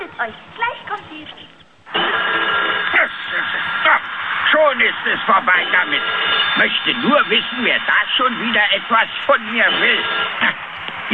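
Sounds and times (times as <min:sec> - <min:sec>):
speech: 0:00.2 - 0:02.2, 0:04.7 - 0:11.1
telephone hanging on an old oak tree ringing: 0:02.0 - 0:03.4, 0:04.7 - 0:10.5.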